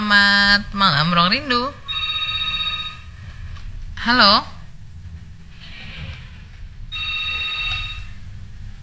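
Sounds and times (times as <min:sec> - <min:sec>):
low steady hum: 0:00.0 - 0:08.8
speech: 0:00.1 - 0:01.8, 0:04.0 - 0:04.5
thin high electronic telephone tone: 0:01.9 - 0:03.1, 0:06.9 - 0:08.2.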